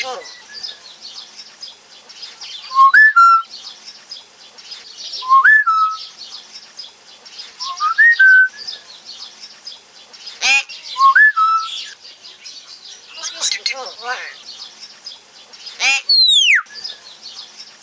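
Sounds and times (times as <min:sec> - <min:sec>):
speech: 0:00.0 - 0:00.5
pet common hill myna rising-then-level whistle: 0:02.7 - 0:03.5, 0:05.2 - 0:06.1, 0:07.6 - 0:08.6, 0:11.0 - 0:12.0, 0:16.1 - 0:16.8.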